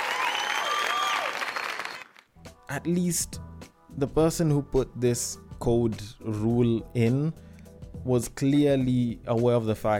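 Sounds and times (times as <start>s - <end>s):
crowd applause: 0.0s - 2.2s
whistles from a crowd: 0.1s - 2.1s
speech: 2.7s - 9.9s.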